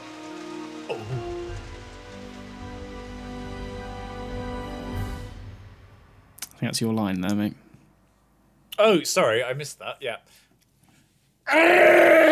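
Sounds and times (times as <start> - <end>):
steady rain on a hard surface: 0.0 - 5.4
speech: 0.9 - 1.4, 6.6 - 7.6, 8.8 - 10.4, 11.5 - 12.2.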